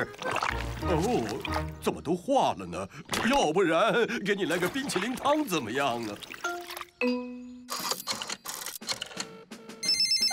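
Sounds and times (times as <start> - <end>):
speech: 0.8 - 7.3
telephone ringing in short jangling bursts: 8.9 - 10.3.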